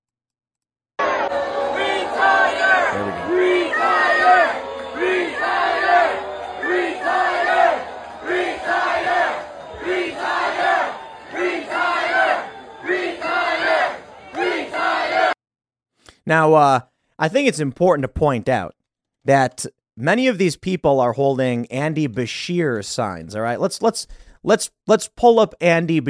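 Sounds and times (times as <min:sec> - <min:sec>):
large crowd chanting a slogan at a rally: 0:01.0 - 0:15.4
speech: 0:16.3 - 0:26.0.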